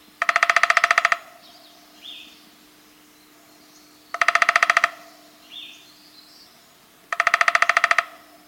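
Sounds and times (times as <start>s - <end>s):
downy woodpecker drumming: 0.0s - 1.6s, 4.1s - 5.3s, 7.1s - 8.4s
faint bird calls: 0.0s - 8.4s.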